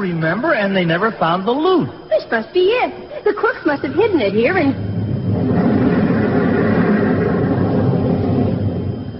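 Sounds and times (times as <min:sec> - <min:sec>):
speech: 0:00.0 - 0:06.0
cave-in rumble of collapsing rock and tumbling debris: 0:05.0 - 0:09.1.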